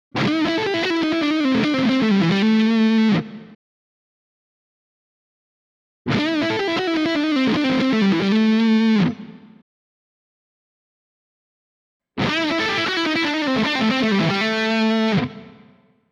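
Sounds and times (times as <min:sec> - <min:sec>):
lead electric guitar through black split-coil humbucker: 0:00.2 - 0:03.6, 0:06.1 - 0:09.6, 0:12.2 - 0:15.8.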